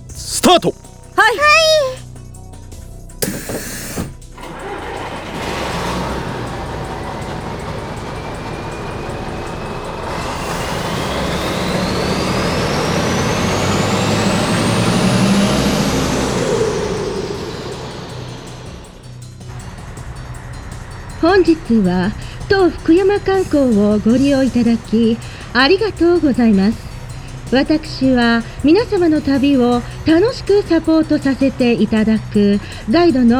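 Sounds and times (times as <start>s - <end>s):
tour bus engine rumbling as it pulls away: 0.0s - 2.0s, 3.0s - 33.3s
speech: 0.5s - 2.0s, 21.4s - 26.9s, 27.5s - 33.3s
tour bus air brakes hissing: 3.1s - 13.6s, 18.6s - 33.0s.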